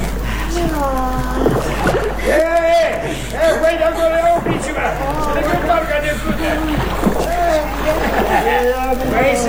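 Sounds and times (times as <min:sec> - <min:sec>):
boat moving through splashing water: 0:00.0 - 0:09.4
raised voices calling out: 0:00.1 - 0:09.4
laughter: 0:00.2 - 0:09.4
speech: 0:02.2 - 0:09.4.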